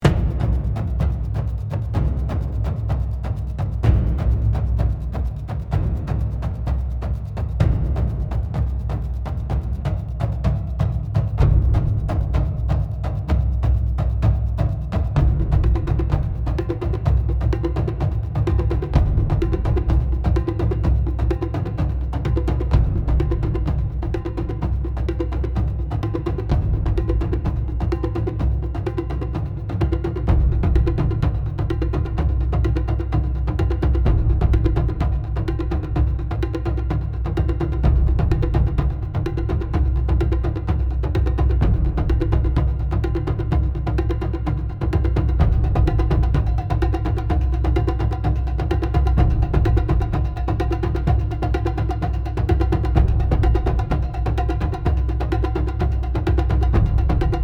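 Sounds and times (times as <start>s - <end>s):
tribal drum beat: 0.0s - 57.4s.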